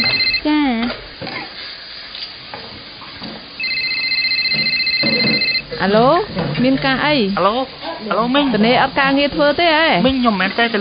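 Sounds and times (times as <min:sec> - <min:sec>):
telephone ringing with an incoming call: 0:00.0 - 0:00.5, 0:03.6 - 0:05.9
speech: 0:05.8 - 0:10.7.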